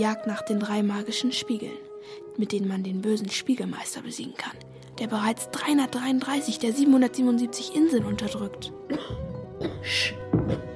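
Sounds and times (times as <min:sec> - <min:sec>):
speech: 0:00.0 - 0:09.2, 0:09.8 - 0:10.7
soft coughs: 0:08.9 - 0:10.7.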